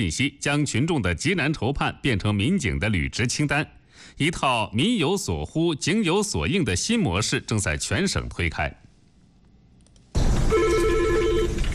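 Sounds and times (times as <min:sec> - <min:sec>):
speech: 0:00.0 - 0:08.9
telephone at a police hotline ringing with an electronic trill: 0:10.5 - 0:11.7.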